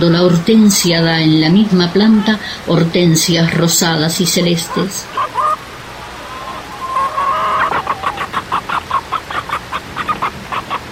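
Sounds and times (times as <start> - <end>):
speech: 0.0 - 5.4
hen clucking: 1.2 - 2.5, 3.2 - 10.9.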